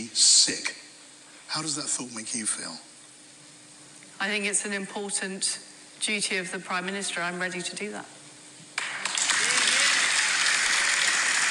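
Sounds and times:
speech: 0.0 - 0.8, 1.5 - 2.9, 4.2 - 8.2
audience applause: 8.8 - 11.5.

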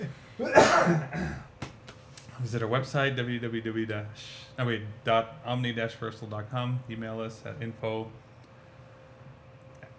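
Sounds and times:
speech: 0.0 - 1.4, 2.4 - 8.2
person coughing: 0.0 - 1.6.

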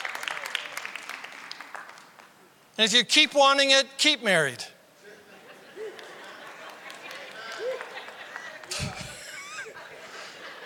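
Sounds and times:
crowd clapping: 0.0 - 2.4, 5.8 - 9.2
speech: 2.8 - 4.7
laughter: 5.0 - 10.6.

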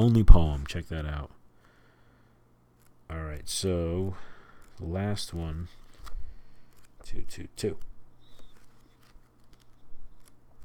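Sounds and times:
speech: 0.0 - 1.4, 3.1 - 5.8, 7.0 - 7.9
faint steady hum: 0.0 - 10.6
pages of a poetry book turning: 2.7 - 10.6.

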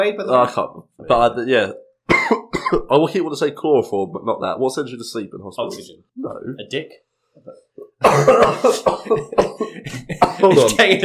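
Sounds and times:
speech: 0.0 - 11.0
person clearing throat: 2.1 - 2.9, 7.5 - 11.0
person coughing with something caught in the throat: 2.1 - 2.9, 7.9 - 11.0.

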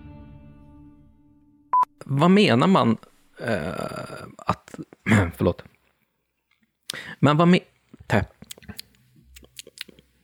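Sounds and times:
speech: 2.1 - 5.7, 6.9 - 8.4
wet mouth sounds of someone chewing: 7.8 - 10.2.

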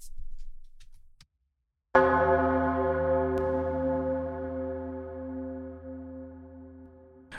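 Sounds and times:
deep low-pitched church bell pitched down an octave: 2.0 - 7.3.

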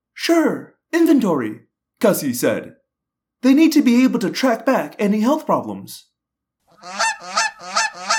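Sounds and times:
speech: 0.3 - 2.8, 3.4 - 6.1, 6.8 - 7.8
goose honking loudly in distress: 6.7 - 8.1.

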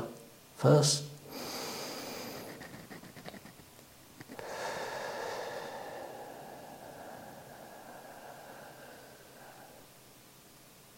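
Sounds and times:
speech: 0.6 - 1.1
slow deep breathing in and out during a guided meditation exercise: 1.3 - 2.7, 4.2 - 10.2.

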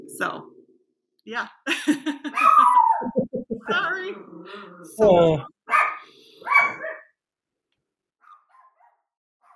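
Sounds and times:
speech: 0.2 - 0.6, 1.2 - 5.8
pet dog barking at a family member arriving home: 2.3 - 3.0, 5.7 - 7.2, 8.2 - 9.5.

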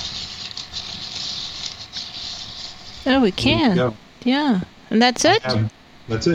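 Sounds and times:
hand-cranked apple peeler-corer blade scraping and coring an apple: 0.0 - 3.7
speech: 3.0 - 6.3.

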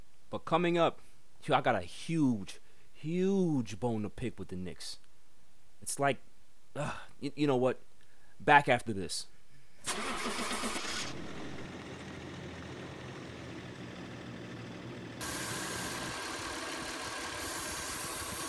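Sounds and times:
speech: 0.3 - 5.0, 5.8 - 11.4
car engine cranking, failing to start: 9.9 - 18.4.

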